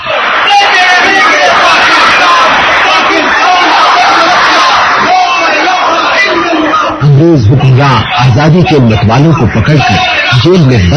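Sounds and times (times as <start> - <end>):
procession crowd chanting and shouting political slogans: 0.0 - 7.0
speech: 7.2 - 10.9.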